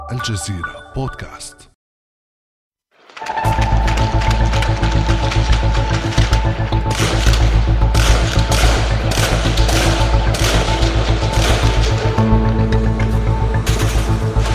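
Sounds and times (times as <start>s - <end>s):
speech: 0.1s - 1.7s
bursts of rapid machine gun fire: 3.5s - 12.6s
heavy shelling blasts: 4.2s - 14.5s.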